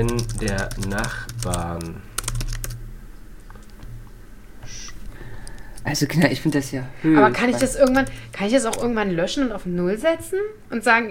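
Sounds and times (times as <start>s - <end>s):
speech: 0.0s - 2.1s, 5.8s - 11.0s
typing on a computer keyboard: 0.0s - 2.8s, 7.6s - 8.9s
low hiss: 0.0s - 11.0s.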